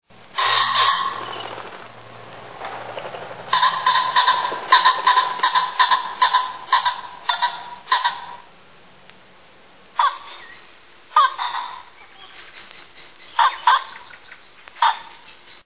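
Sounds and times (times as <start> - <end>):
pheasant calling: 0.4 - 1.9, 2.8 - 8.5, 10.0 - 15.6.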